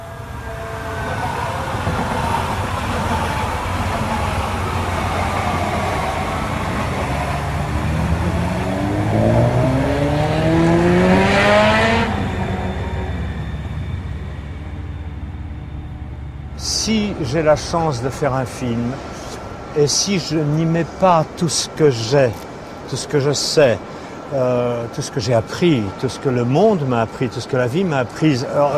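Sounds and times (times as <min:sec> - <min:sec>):
car engine accelerating: 0:00.0 - 0:18.3
speech: 0:17.3 - 0:19.1, 0:19.7 - 0:28.7.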